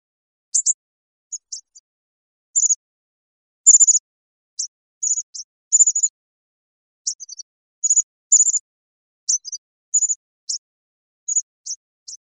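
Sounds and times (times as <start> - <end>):
bird chirping: 0.5 - 1.9, 2.5 - 2.8, 3.6 - 6.2, 7.0 - 8.7, 9.3 - 12.3.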